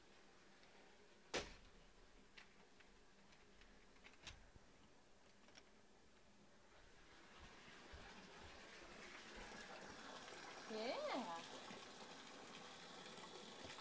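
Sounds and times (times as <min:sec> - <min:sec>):
water running and splashing while washing hands: 0:07.0 - 0:13.8.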